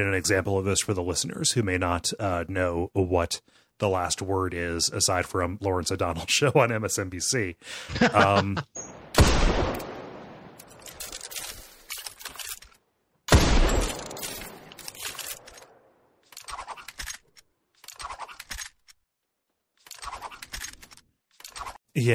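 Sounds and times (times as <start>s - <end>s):
speech: 0.0s - 9.7s, 22.0s - 22.1s
laughter: 7.8s - 8.7s
video game gunshots with long tails: 8.9s - 10.6s, 13.3s - 14.8s
video game gun spinning with a whistling swish: 16.4s - 17.1s.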